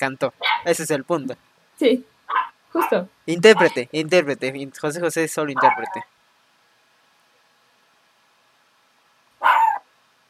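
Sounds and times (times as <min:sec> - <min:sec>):
speech: 0:00.0 - 0:06.1
small female pet dog barking: 0:00.4 - 0:00.7, 0:02.3 - 0:03.8, 0:05.5 - 0:06.1, 0:09.4 - 0:09.9.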